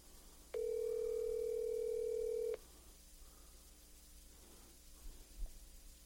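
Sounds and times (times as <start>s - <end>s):
faint hiss: 0.0s - 6.0s
ringback tone from an outgoing phone call: 0.6s - 2.6s.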